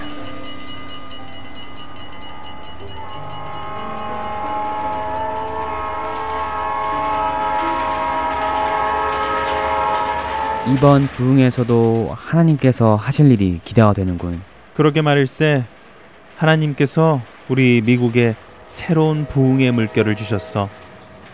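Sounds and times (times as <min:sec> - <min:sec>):
long train horn in sustained layered tones: 0:00.0 - 0:12.0, 0:18.4 - 0:21.3
train bound for Iowa rumbling along the tracks: 0:00.0 - 0:21.3
speech: 0:10.7 - 0:15.7, 0:16.4 - 0:20.8.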